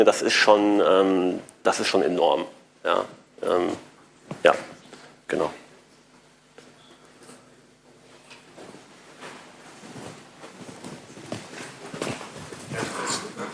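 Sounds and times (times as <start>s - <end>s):
speech: 0.0s - 4.7s, 5.3s - 5.6s
footsteps walking across a room: 3.1s - 13.5s.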